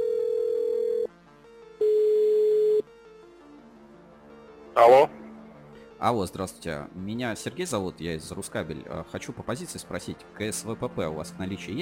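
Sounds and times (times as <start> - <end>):
ringback tone of an outgoing telephone call: 0.0 - 1.1, 1.8 - 2.9
speech: 4.8 - 5.2, 6.0 - 11.7.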